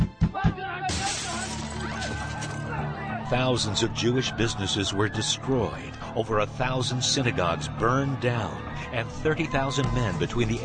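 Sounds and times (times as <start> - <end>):
glass shattering: 0.9 - 2.8
speech: 3.3 - 10.6.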